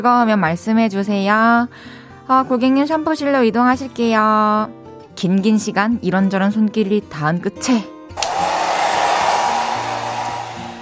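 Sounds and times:
speech: 0.0s - 8.3s
hair dryer switch click: 8.2s - 10.8s.

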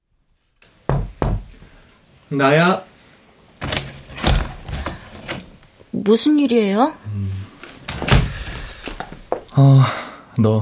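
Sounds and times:
firm knocks on a bedroom door: 0.9s - 1.5s
speech: 2.3s - 2.9s, 6.0s - 7.3s, 9.6s - 10.5s.

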